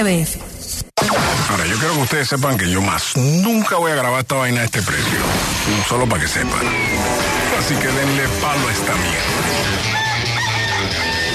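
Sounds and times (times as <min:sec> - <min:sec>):
speech: 0:00.0 - 0:00.5, 0:01.5 - 0:10.1
rooster crowing: 0:09.7 - 0:11.3.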